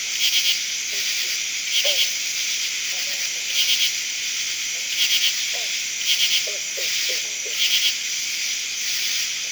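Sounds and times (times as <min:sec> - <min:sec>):
crickets chirping in the day: 0:00.0 - 0:09.5.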